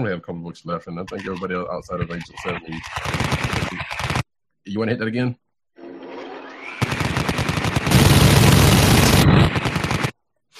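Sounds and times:
speech: 0:00.0 - 0:05.4
minigun firing sound effect: 0:02.7 - 0:04.2, 0:06.8 - 0:10.2.

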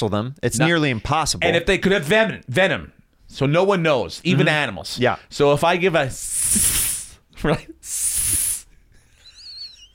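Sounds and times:
speech: 0:00.0 - 0:08.4
person imitating a snake with breathy hisses: 0:06.2 - 0:07.2, 0:07.8 - 0:08.7.

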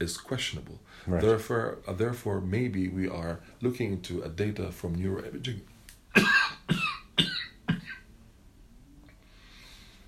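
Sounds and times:
speech: 0:00.0 - 0:06.4
person coughing harshly: 0:06.1 - 0:08.1.

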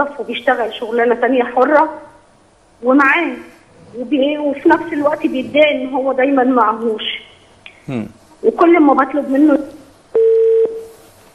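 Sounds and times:
speech: 0:00.0 - 0:02.1, 0:02.8 - 0:07.2, 0:07.9 - 0:09.8
low telephone line hiss: 0:00.0 - 0:11.3
telephone line disconnect tone: 0:10.2 - 0:10.9.

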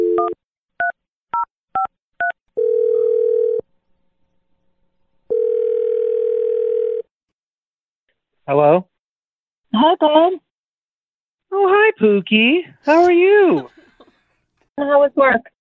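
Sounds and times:
long steady low telephone tones: 0:02.6 - 0:03.6, 0:05.3 - 0:07.1
speech: 0:08.5 - 0:08.9, 0:09.7 - 0:10.5, 0:11.5 - 0:13.7, 0:14.8 - 0:15.5.

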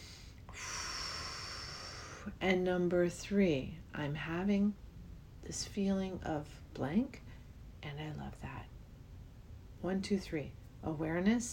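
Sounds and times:
deep breath: 0:00.0 - 0:02.3
speech: 0:02.3 - 0:04.8, 0:05.4 - 0:07.2, 0:07.8 - 0:08.7, 0:09.8 - 0:11.5.

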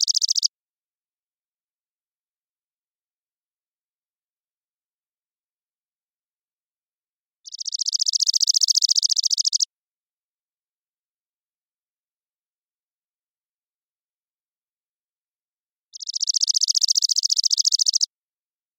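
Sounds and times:
chipping sparrow Spizella passerina monotone chip trill: 0:00.0 - 0:00.5, 0:07.4 - 0:09.7, 0:15.9 - 0:18.1.

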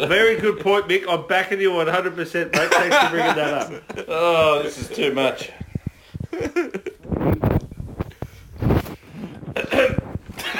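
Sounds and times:
speech: 0:00.0 - 0:05.6
laughter: 0:02.5 - 0:05.2, 0:06.3 - 0:07.1
person clearing throat: 0:09.5 - 0:10.5.

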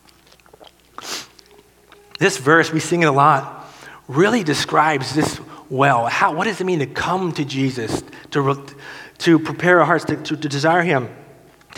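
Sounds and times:
speaker taking a sip of drink: 0:00.1 - 0:02.2
speech: 0:02.2 - 0:11.7.

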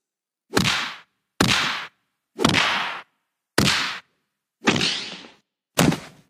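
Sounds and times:
movie punch sound effects: 0:00.5 - 0:06.2.

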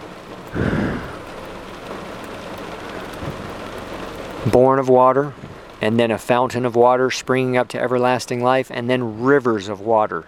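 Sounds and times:
steady rain hiss: 0:00.0 - 0:10.2
thunder rumbling in a rainstorm: 0:00.5 - 0:01.4, 0:02.9 - 0:03.8
speech: 0:04.4 - 0:10.2.

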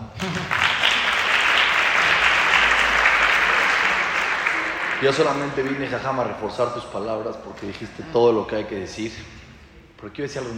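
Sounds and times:
audience applause: 0:00.2 - 0:06.6
speech: 0:05.0 - 0:09.4, 0:10.0 - 0:10.5.

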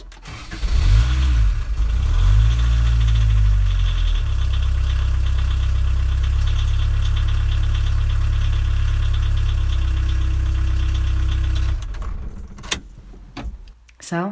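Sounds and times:
car engine cranking, revving and idling: 0:00.0 - 0:13.8
jingle of keys: 0:11.9 - 0:13.7.

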